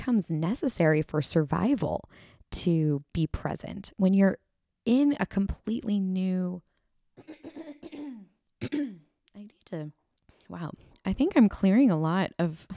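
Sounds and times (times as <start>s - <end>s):
speech: 0.0s - 8.0s, 8.6s - 12.7s
person clearing throat: 7.2s - 9.1s.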